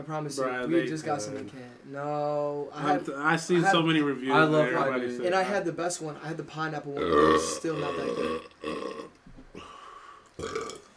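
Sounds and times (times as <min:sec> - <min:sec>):
speech: 0:00.0 - 0:08.9
loud drawn-out burp after drinking: 0:07.0 - 0:09.7, 0:10.4 - 0:10.9.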